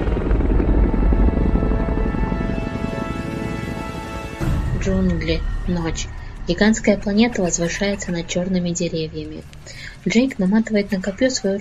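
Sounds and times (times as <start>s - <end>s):
helicopter turning and flying away: 0.0s - 11.5s
speech: 4.9s - 11.5s.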